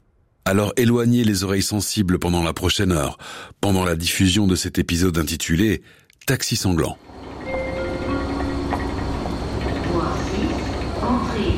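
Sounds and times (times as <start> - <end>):
speech: 0.5 - 7.3
rail noise at Lausanne train station: 7.0 - 11.5
indistinct voices: 8.7 - 11.5.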